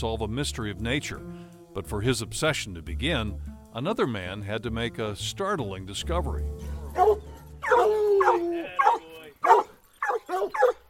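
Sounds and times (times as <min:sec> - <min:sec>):
speech: 0:00.0 - 0:08.6
hunting hound baying and howling: 0:06.8 - 0:10.8.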